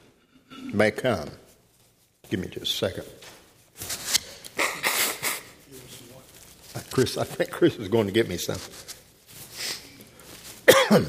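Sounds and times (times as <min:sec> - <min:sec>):
speech: 0:00.7 - 0:01.4, 0:02.3 - 0:03.4, 0:07.0 - 0:08.9, 0:10.9 - 0:11.0
faint breathing: 0:09.4 - 0:10.4
person coughing: 0:10.6 - 0:11.0.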